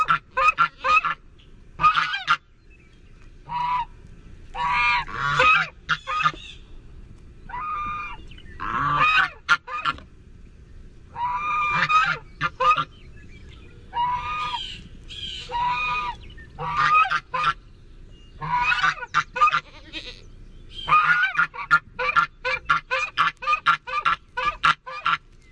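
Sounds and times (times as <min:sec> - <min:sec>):
goose honks: 0:00.0 - 0:01.2, 0:01.8 - 0:02.4, 0:04.5 - 0:06.5, 0:07.5 - 0:10.0, 0:11.1 - 0:13.0, 0:13.9 - 0:17.6, 0:18.4 - 0:20.2, 0:20.8 - 0:25.2.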